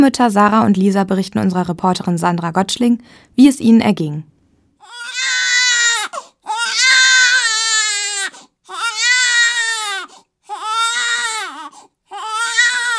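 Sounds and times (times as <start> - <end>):
speech: 0.0 - 5.0
baby boy almost one year old wailing: 4.8 - 12.9.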